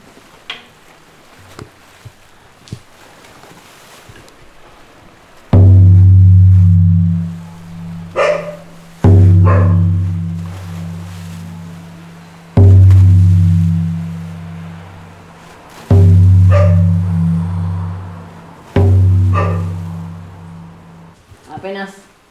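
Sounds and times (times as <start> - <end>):
long deep bass drum notes: 5.6 - 21.2
female dog barking: 8.1 - 8.7, 9.4 - 10.1, 16.5 - 16.9, 19.3 - 19.8.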